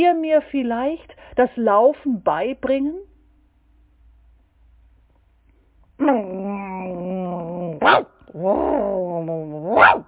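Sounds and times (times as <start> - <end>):
speech: 0.0 - 3.1, 6.0 - 7.0, 7.8 - 10.0
human voice imitating a dog growling and barking: 6.0 - 10.0.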